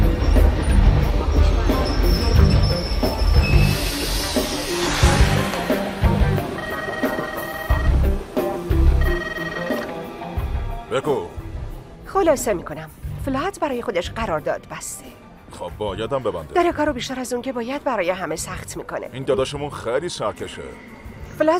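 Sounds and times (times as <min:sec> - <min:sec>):
train rumbling at a railway station: 0:00.0 - 0:13.4
high metallic squeals and tonal whines from wheels or brakes: 0:00.2 - 0:07.7
speech: 0:12.2 - 0:21.5.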